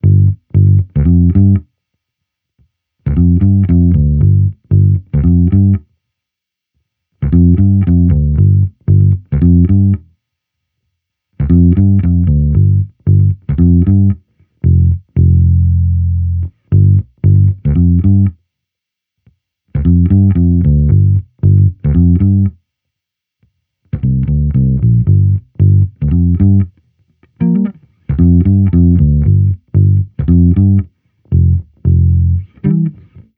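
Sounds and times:
amped electric bass loop in G minor: 0:00.0 - 0:01.6, 0:03.1 - 0:05.8, 0:07.2 - 0:10.0, 0:11.4 - 0:18.4, 0:19.8 - 0:22.5, 0:24.0 - 0:26.7, 0:27.4 - 0:33.2.

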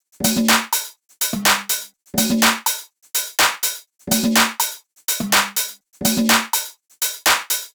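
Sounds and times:
drum top loop: 0:00.2 - 0:07.7.

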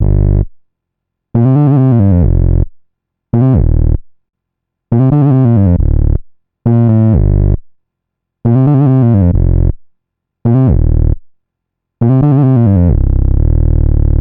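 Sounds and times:
synth bass loop in G minor at 135 BPM: 0:00.0 - 0:00.5, 0:01.4 - 0:02.7, 0:03.4 - 0:04.0, 0:04.9 - 0:07.6, 0:08.5 - 0:09.8, 0:10.5 - 0:11.2, 0:12.0 - 0:14.2.

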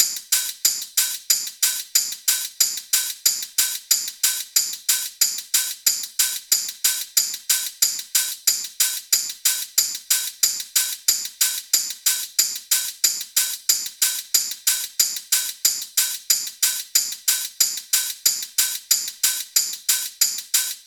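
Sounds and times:
hi-hat drum loop: 0:00.0 - 0:20.8.

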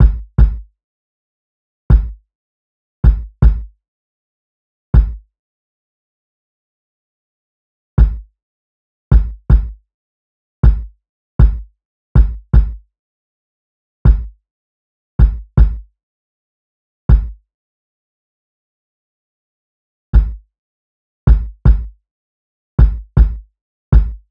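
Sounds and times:
kick drum loop: 0:00.0 - 0:00.6, 0:01.9 - 0:02.2, 0:03.0 - 0:03.7, 0:05.0 - 0:05.2, 0:08.0 - 0:08.3, 0:09.1 - 0:09.8, 0:10.6 - 0:12.8, 0:14.1 - 0:14.4, 0:15.2 - 0:15.9, 0:17.1 - 0:17.4, 0:20.2 - 0:20.4, 0:21.3 - 0:22.0, 0:22.8 - 0:23.4, 0:24.0 - 0:24.2.

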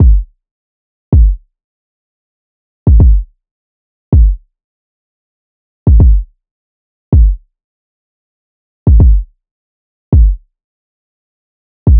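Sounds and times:
kick drum loop from a drum sample pack: 0:00.0 - 0:00.3, 0:01.1 - 0:01.4, 0:02.9 - 0:03.3, 0:04.1 - 0:04.4, 0:05.9 - 0:06.3, 0:07.1 - 0:07.4, 0:08.9 - 0:09.3, 0:10.1 - 0:10.4.

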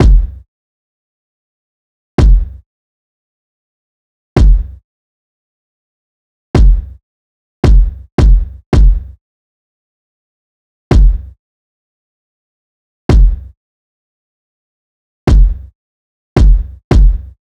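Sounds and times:
kick drum loop: 0:00.0 - 0:00.4, 0:02.2 - 0:02.6, 0:04.4 - 0:04.8, 0:06.6 - 0:07.0, 0:07.6 - 0:09.1, 0:10.9 - 0:11.3, 0:13.1 - 0:13.5, 0:15.3 - 0:15.7, 0:16.4 - 0:17.4.

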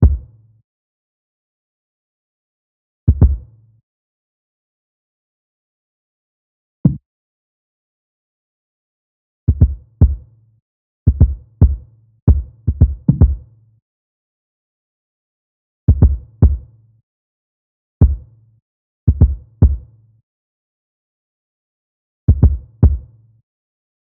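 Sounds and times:
kick drum loop: 0:00.0 - 0:00.3, 0:03.1 - 0:03.4, 0:09.5 - 0:10.2, 0:11.1 - 0:13.4, 0:15.9 - 0:16.6, 0:18.0 - 0:18.2, 0:19.1 - 0:19.8, 0:22.3 - 0:23.0.

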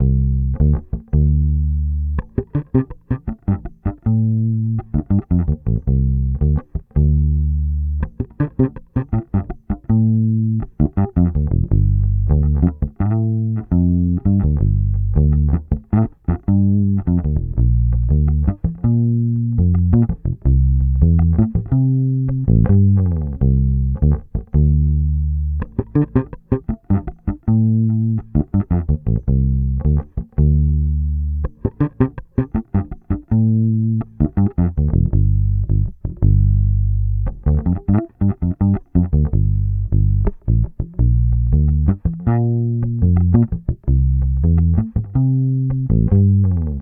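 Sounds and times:
electric bass loop in D minor: 0:00.0 - 0:46.8.

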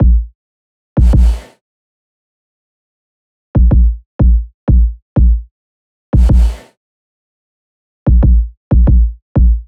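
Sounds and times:
pop kick drum loop: 0:00.0 - 0:00.3, 0:01.0 - 0:01.4, 0:03.6 - 0:05.4, 0:06.2 - 0:06.6, 0:08.1 - 0:09.6.

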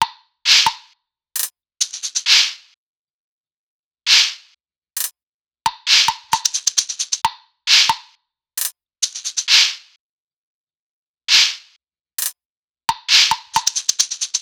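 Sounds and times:
percussion loop: 0:00.0 - 0:02.4, 0:05.7 - 0:09.6, 0:12.2 - 0:14.4.

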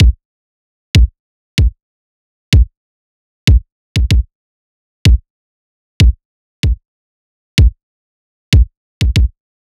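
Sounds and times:
pop kick drum loop: 0:00.0 - 0:00.2, 0:01.0 - 0:01.8, 0:02.5 - 0:02.7, 0:03.5 - 0:04.3, 0:06.0 - 0:06.8, 0:07.6 - 0:07.8, 0:08.5 - 0:09.4.

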